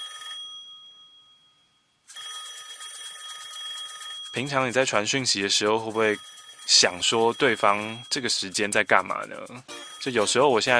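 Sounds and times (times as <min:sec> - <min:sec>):
retro telephone bell ringtone: 0:00.0 - 0:10.7
speech: 0:04.4 - 0:10.7.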